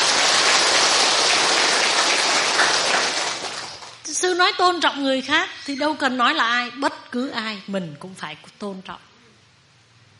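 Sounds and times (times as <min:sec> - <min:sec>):
crowd applauding: 0:00.0 - 0:04.0
speech: 0:04.4 - 0:09.1.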